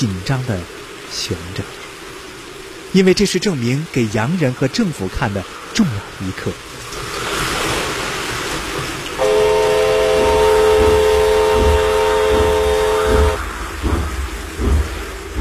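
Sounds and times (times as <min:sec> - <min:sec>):
speech: 0:00.0 - 0:01.8, 0:02.9 - 0:06.7
train slowly approaching on flooded tracks in the rain: 0:00.0 - 0:15.4
steady sustained train whistle tone: 0:09.2 - 0:13.4.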